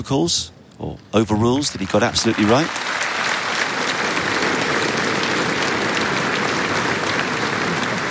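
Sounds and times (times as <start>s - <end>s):
speech: 0.0s - 3.3s
large audience applauding the umpire: 1.4s - 8.0s.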